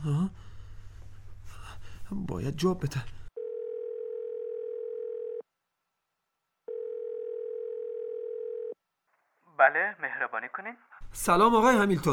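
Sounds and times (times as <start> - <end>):
speech: 2.1 - 3.2, 9.6 - 12.1
electronic telephone ringback tone while calling: 3.4 - 5.4, 6.7 - 8.8.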